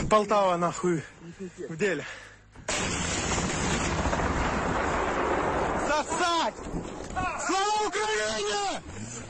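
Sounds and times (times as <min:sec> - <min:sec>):
speech: 0:00.1 - 0:03.0, 0:06.0 - 0:09.2
grenade launcher fired at a tank on a village road: 0:02.7 - 0:06.2
militiamen shouting excitedly as they run to hide: 0:07.2 - 0:08.8.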